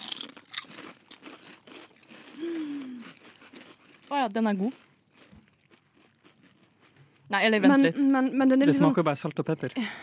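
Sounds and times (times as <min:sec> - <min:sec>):
chewing of mango habanero potato chips: 0:00.0 - 0:07.3
crunching of mango habanero potato chips being bitten: 0:00.0 - 0:07.4
speech: 0:04.1 - 0:04.8, 0:07.3 - 0:10.0.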